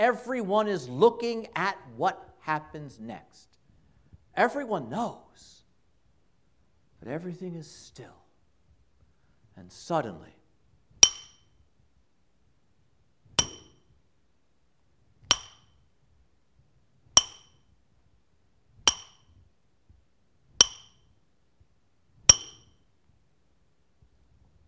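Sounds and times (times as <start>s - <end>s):
speech: 0.0s - 3.5s, 4.4s - 5.6s, 7.0s - 8.2s, 9.6s - 10.4s
hammer striking metal: 11.0s - 11.5s, 13.4s - 13.8s, 15.3s - 15.7s, 17.2s - 17.6s, 18.9s - 19.2s, 20.6s - 21.0s, 22.3s - 22.7s.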